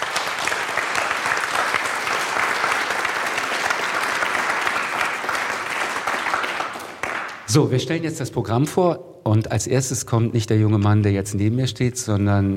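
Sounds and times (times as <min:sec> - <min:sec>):
audience applause: 0:00.0 - 0:07.5
speech: 0:07.5 - 0:12.5.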